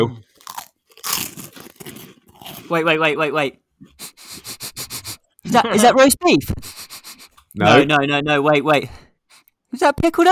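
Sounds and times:
speech: 0:00.0 - 0:00.2, 0:02.7 - 0:04.0, 0:05.5 - 0:06.6, 0:07.6 - 0:09.0, 0:09.7 - 0:10.3
crunching of crisp corn snacks: 0:00.3 - 0:02.8.

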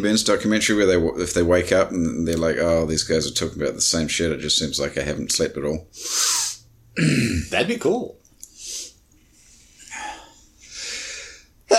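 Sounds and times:
speech: 0:00.0 - 0:08.2
breathy rising inhales: 0:08.5 - 0:11.6.

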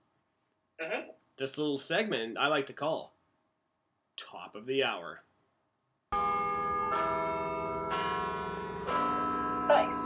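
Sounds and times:
speech: 0:00.8 - 0:03.2, 0:04.3 - 0:05.3, 0:09.9 - 0:10.0
church bells ringing: 0:06.2 - 0:10.0.

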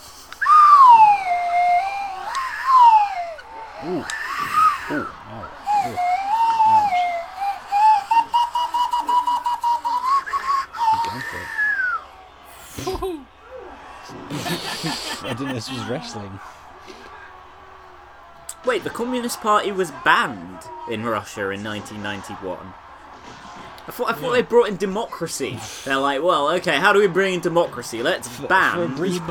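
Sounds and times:
laughter: 0:00.0 - 0:17.5
slide whistle: 0:00.3 - 0:12.8
speech: 0:15.6 - 0:16.6, 0:18.7 - 0:29.2.

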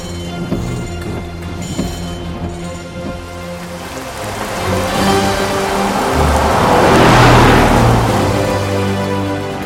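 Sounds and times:
car engine humming while slowing down in the rain: 0:00.0 - 0:09.6
rain hissing: 0:03.4 - 0:09.6
broad wet whoosh of a car in the rain: 0:03.7 - 0:09.3.

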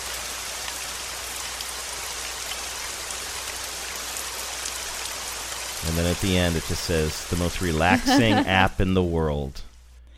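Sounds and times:
steady rain falling on leaves: 0:00.0 - 0:08.0
speech: 0:05.8 - 0:09.7
laughter: 0:07.9 - 0:08.7.

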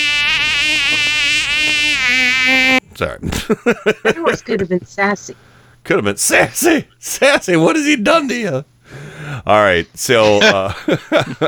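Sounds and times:
mosquito buzzing: 0:00.0 - 0:02.8
speech: 0:03.0 - 0:11.4
laughter: 0:03.2 - 0:05.3, 0:10.0 - 0:11.4.

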